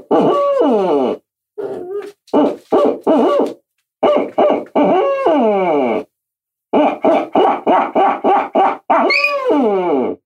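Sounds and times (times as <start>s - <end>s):
person imitating owl hooting with their voice: 0.1s - 2.0s, 4.2s - 6.1s, 6.8s - 10.2s.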